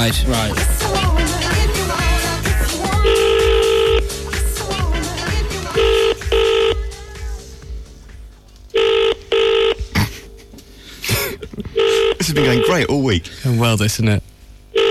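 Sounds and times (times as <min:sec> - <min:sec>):
speech: 0:00.0 - 0:01.1, 0:12.4 - 0:14.3
music: 0:00.0 - 0:10.8
telephone ringing with a steady buzzing tone: 0:03.0 - 0:04.2, 0:05.7 - 0:06.8, 0:08.8 - 0:09.8, 0:11.8 - 0:12.9.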